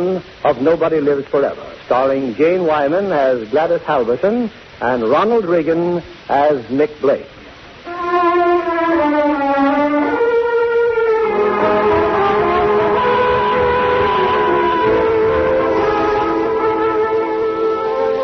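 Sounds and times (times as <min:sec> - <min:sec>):
speech: 0:00.0 - 0:07.4
fast train whistle wailing: 0:07.9 - 0:18.2
fast train rumbling along the rails: 0:11.1 - 0:18.2.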